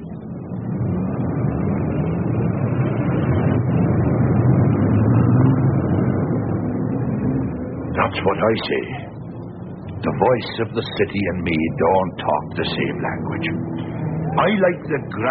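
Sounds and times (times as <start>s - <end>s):
city traffic roar of buses and taxis: 0.0s - 15.2s
speech: 8.2s - 9.1s, 10.0s - 15.2s.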